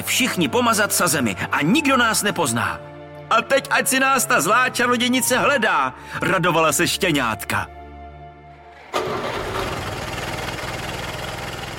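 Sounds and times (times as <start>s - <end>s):
speech: 0.1s - 7.8s
car engine idling: 8.5s - 11.7s.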